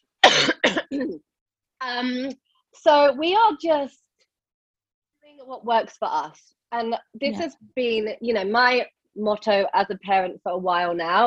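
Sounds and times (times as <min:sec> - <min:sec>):
person coughing harshly and throatily: 0:00.2 - 0:01.2
speech: 0:01.0 - 0:04.0, 0:05.3 - 0:11.2.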